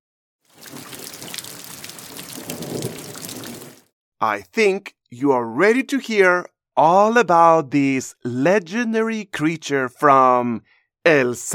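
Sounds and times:
steady dense rainfall pattering: 0.5s - 3.9s
low rolling rumble of thunder: 0.6s - 3.8s
speech: 4.2s - 11.5s.

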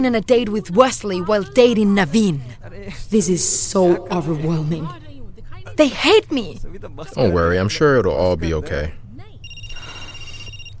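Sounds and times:
speech: 0.0s - 5.0s, 5.8s - 9.0s
low hum: 0.0s - 10.7s
telephone ringing: 9.4s - 10.7s.

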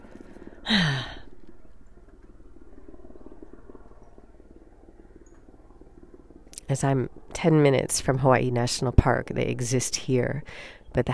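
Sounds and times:
helicopter droning overhead: 0.0s - 10.6s
speech: 0.7s - 1.1s, 6.7s - 11.1s.

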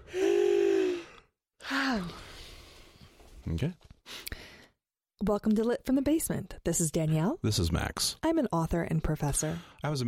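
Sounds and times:
person yawning: 0.0s - 2.1s
speech: 3.5s - 4.2s, 5.2s - 10.0s.

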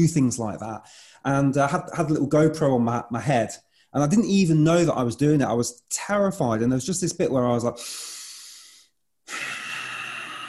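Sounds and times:
speech: 0.0s - 8.2s
frightened person taking a short breath and a long exhale: 7.8s - 10.4s.

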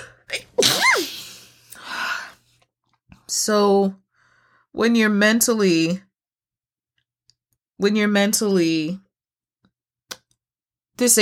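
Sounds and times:
person sneezing: 0.4s - 1.6s
speech: 3.4s - 4.0s, 4.7s - 6.1s, 7.8s - 9.0s, 11.0s - 11.1s.

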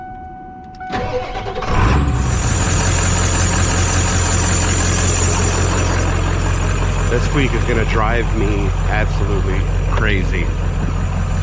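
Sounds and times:
pickup truck starter whirring: 0.8s - 4.4s
pickup truck engine cranking and rumbling: 0.8s - 11.4s
speech: 7.1s - 11.0s.

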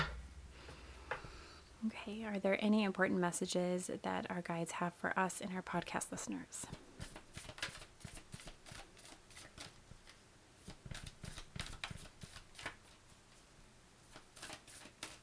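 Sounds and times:
speech: 1.8s - 6.8s
deck of cards being shuffled: 6.7s - 13.4s, 14.1s - 15.2s.

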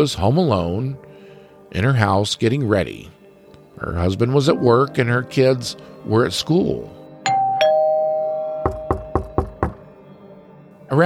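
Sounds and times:
speech: 0.0s - 1.1s, 1.7s - 3.2s, 3.8s - 7.0s
two-note doorbell chime: 7.2s - 9.6s
quick firm knocks on a door: 8.6s - 9.9s.

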